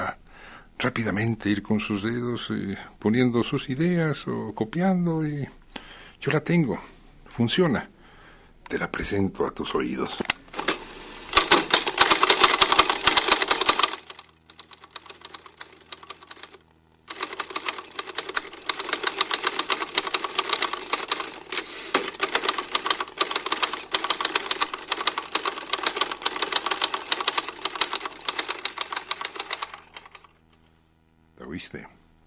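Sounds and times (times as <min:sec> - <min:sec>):
speech: 0:00.8 - 0:05.6, 0:06.2 - 0:07.9, 0:08.7 - 0:10.3
1935 Remington typewriter keystrokes clattering: 0:10.6 - 0:30.3.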